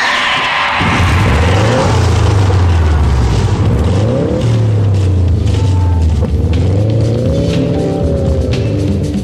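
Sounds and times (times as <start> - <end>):
car engine starting and revving: 0.8 - 9.2.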